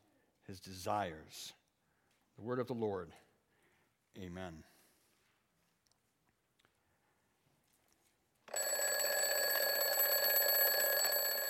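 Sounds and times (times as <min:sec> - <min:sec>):
speech: 0:00.5 - 0:01.6, 0:02.4 - 0:03.3, 0:04.2 - 0:04.8
alarm clock ringing with a steady electronic tone: 0:08.5 - 0:11.4.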